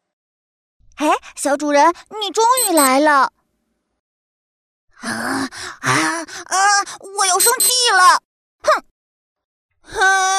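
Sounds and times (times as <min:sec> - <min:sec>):
speech: 0:01.0 - 0:03.4, 0:05.0 - 0:08.9, 0:09.9 - 0:10.3
toy robot's voice imitating crying: 0:02.6 - 0:03.0.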